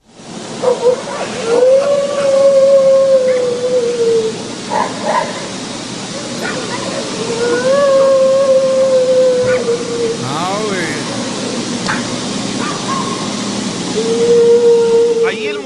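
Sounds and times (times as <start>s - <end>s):
hiss: 0.0s - 15.6s
eerie wails at night: 1.2s - 5.2s, 6.2s - 11.3s, 12.9s - 15.6s.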